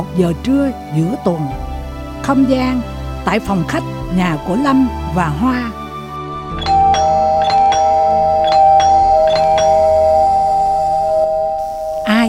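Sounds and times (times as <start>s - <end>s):
speech: 0.0s - 5.8s
doorbell chiming ding-dong: 6.5s - 12.2s.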